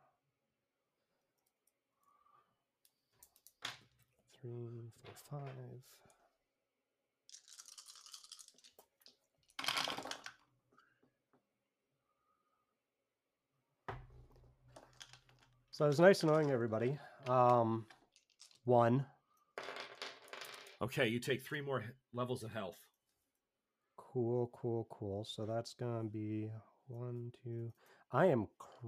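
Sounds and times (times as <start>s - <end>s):
speech: 4.4s - 6.2s, 15.8s - 18.0s, 18.6s - 19.2s, 20.8s - 22.8s, 24.1s - 28.8s
dice rattling across a hard surface: 7.3s - 10.4s, 14.8s - 16.6s, 17.2s - 18.7s, 19.6s - 20.8s.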